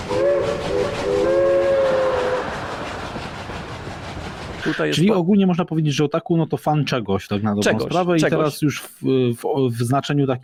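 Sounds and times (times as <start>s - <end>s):
train whistle blasts: 0.0s - 2.5s
train rumbling past: 0.0s - 6.7s
speech: 4.6s - 10.4s.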